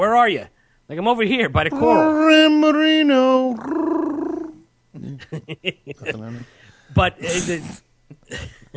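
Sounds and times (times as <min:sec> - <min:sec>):
speech: 0:00.0 - 0:04.0, 0:05.0 - 0:08.7
voice making a warbling buzzy dolphin call imitation: 0:01.7 - 0:05.2.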